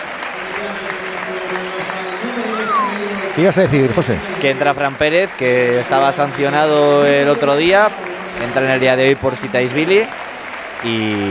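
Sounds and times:
large stadium crowd applauding and cheering in an ovation: 0.0 - 11.2
faint whistles from a stadium crowd: 2.4 - 3.2
speech: 3.4 - 10.2, 10.8 - 11.2.

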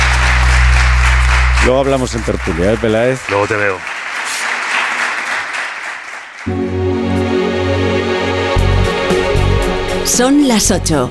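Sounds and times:
loud sustained music with deep tonal bass: 0.0 - 2.8, 6.5 - 11.0
crowd applauding: 0.0 - 6.9
speech: 1.6 - 4.0, 6.4 - 6.8, 10.1 - 11.0.

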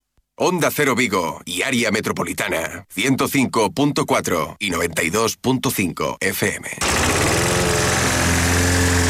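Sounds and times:
speech: 0.4 - 7.4
lawn mower engine cutting grass: 6.8 - 9.0.

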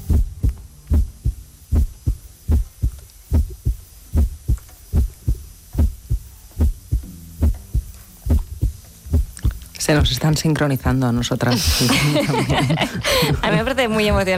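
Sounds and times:
recorded human heartbeats in an art installation: 0.0 - 10.3, 11.7 - 14.3
soft hum: 0.0 - 14.3
speech: 9.9 - 14.3
laughter: 11.5 - 14.3.

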